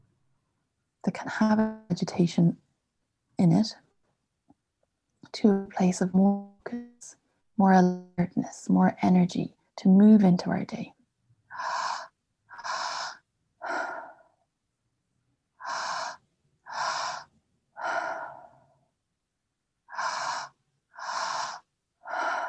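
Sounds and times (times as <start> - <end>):
speech: 1.2 - 2.6, 3.4 - 3.8, 5.3 - 11.0
deep breathing exercise inhaling and exhaling: 11.5 - 14.4, 15.6 - 18.8, 19.9 - 22.4.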